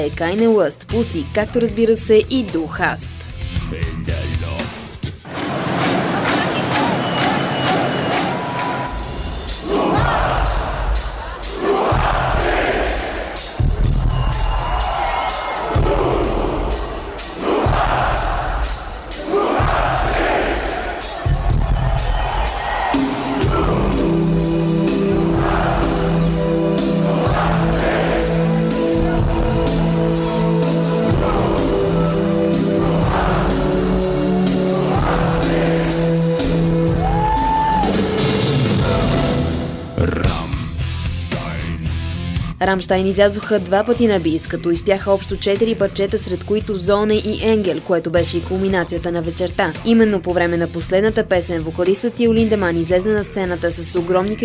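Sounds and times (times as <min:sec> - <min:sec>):
speech: 0:00.0 - 0:04.2, 0:42.6 - 0:54.4
heavy amplified music with sustained tones: 0:00.0 - 0:54.4
arena crowd roaring and chanting: 0:05.2 - 0:40.2.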